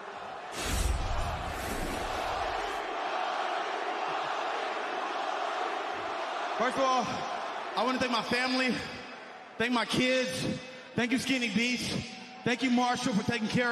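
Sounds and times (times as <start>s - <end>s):
large arena crowd roaring and cheering: 0.0s - 9.6s
speech: 6.6s - 9.0s, 9.6s - 13.6s.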